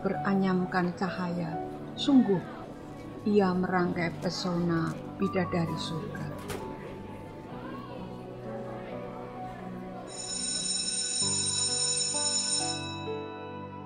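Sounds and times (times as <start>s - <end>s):
speech: 0.0s - 2.6s, 3.2s - 6.3s
low busy murmur: 0.0s - 11.9s
school bell ringing: 10.1s - 13.3s.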